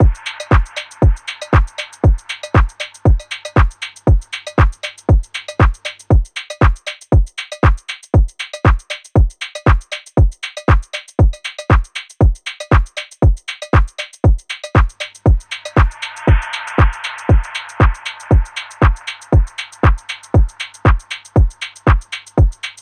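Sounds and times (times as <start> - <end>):
drum loop: 0.0 - 22.8.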